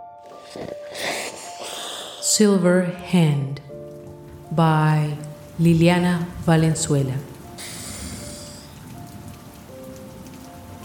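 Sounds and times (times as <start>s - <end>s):
speech: 0.5s - 1.1s, 2.4s - 3.7s, 4.5s - 7.3s
steady rain pattering on a surface: 3.5s - 10.8s.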